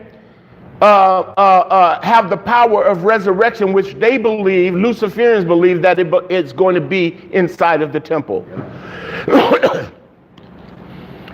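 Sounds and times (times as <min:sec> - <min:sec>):
quiet room noise: 0:00.0 - 0:11.3
speech: 0:00.8 - 0:10.0
throat clearing: 0:09.2 - 0:10.1.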